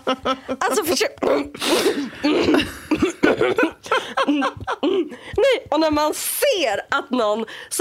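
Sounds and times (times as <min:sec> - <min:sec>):
laughter: 0:00.0 - 0:01.0, 0:01.9 - 0:05.6
speech: 0:00.1 - 0:07.8
person clearing throat: 0:01.2 - 0:03.8
person imitating a stifled cough: 0:01.2 - 0:03.8.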